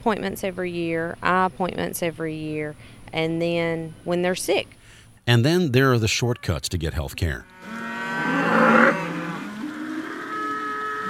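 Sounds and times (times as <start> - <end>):
speech: 0.0 - 7.5
cow mooing: 7.4 - 11.0.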